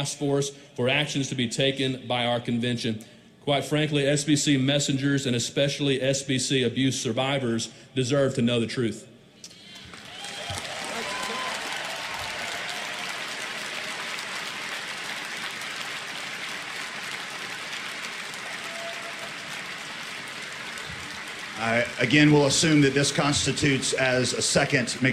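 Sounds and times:
speech: 0:00.0 - 0:09.1, 0:22.0 - 0:25.1
large convention crowd applauding: 0:09.7 - 0:25.1.

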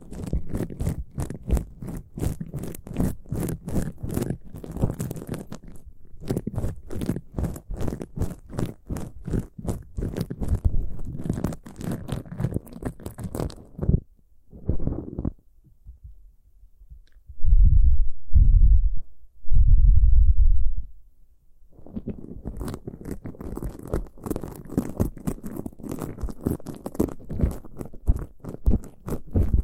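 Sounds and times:
scratching and rustling of ear picking: 0:00.0 - 0:15.4, 0:21.7 - 0:29.6
loud deep thumps: 0:14.6 - 0:16.3, 0:16.9 - 0:20.9.

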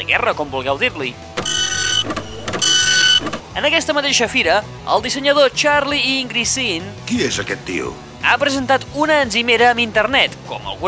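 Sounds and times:
speech: 0:00.1 - 0:01.3, 0:02.0 - 0:02.3, 0:03.6 - 0:10.8
printer whirring and clunking: 0:01.4 - 0:03.5.

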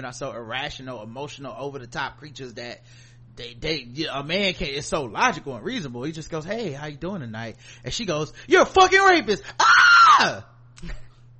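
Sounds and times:
speech: 0:00.0 - 0:11.0
faint hum: 0:00.0 - 0:11.3
man's voice mimicking a woman's shrill scream: 0:09.6 - 0:10.5.

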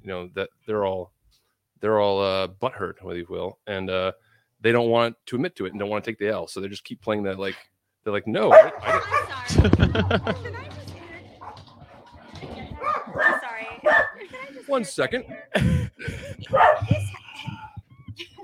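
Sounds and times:
speech: 0:00.0 - 0:01.2, 0:01.8 - 0:10.8, 0:14.7 - 0:17.6
several dogs barking and yipping: 0:08.5 - 0:14.3, 0:16.5 - 0:17.0
laughter: 0:08.8 - 0:11.4, 0:12.3 - 0:18.4.

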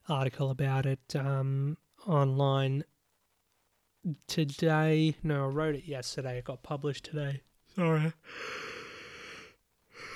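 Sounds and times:
speech: 0:00.1 - 0:02.9, 0:04.0 - 0:08.8
person yawning: 0:07.8 - 0:10.1.

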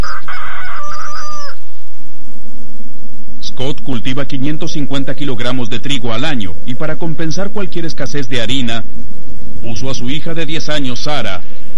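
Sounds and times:
rooster crowing on a farm: 0:00.0 - 0:01.7
low steady hum in a farmyard background: 0:00.0 - 0:11.7
speech: 0:03.6 - 0:11.6.

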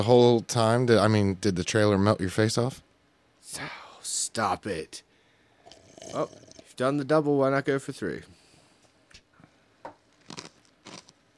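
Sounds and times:
speech: 0:00.0 - 0:05.1, 0:06.0 - 0:08.4
person chewing and crunching food: 0:09.9 - 0:11.3.

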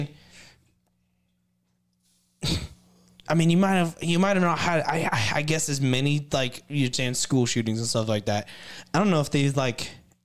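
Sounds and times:
breathy inhale: 0:00.2 - 0:00.7, 0:08.5 - 0:08.9
person sneezing: 0:02.4 - 0:02.9
speech: 0:03.3 - 0:10.0.

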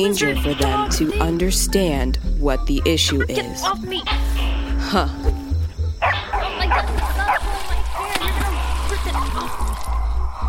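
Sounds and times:
speech: 0:00.0 - 0:05.4
lion dogs barking: 0:06.0 - 0:10.2
watery splashing: 0:06.7 - 0:10.4.

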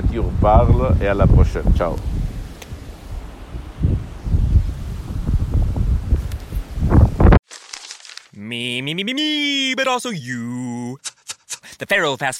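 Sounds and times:
strong gusty wind buffeting against the microphone: 0:00.0 - 0:07.4
speech: 0:00.1 - 0:02.2, 0:08.5 - 0:11.2, 0:11.8 - 0:12.3.

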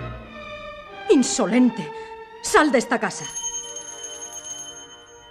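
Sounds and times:
speech: 0:01.2 - 0:03.4
small handbell ringing: 0:03.2 - 0:05.2.

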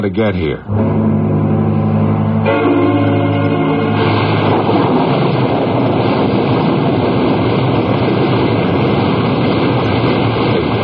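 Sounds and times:
deep rumble of thunder: 0:00.6 - 0:10.8
surf-like wash over the ocean: 0:00.7 - 0:10.8
rushing rain in a storm over the ocean: 0:01.3 - 0:10.8.

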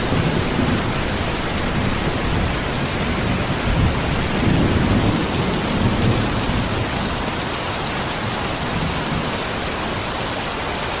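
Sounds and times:
low thunder rumbling: 0:00.0 - 0:07.3
heavy rain pouring: 0:00.0 - 0:10.9.

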